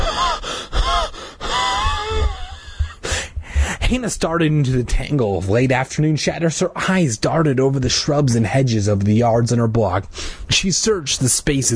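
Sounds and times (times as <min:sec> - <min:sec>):
girl gasping for breath after running: 0:00.0 - 0:03.8
speech: 0:03.9 - 0:11.7.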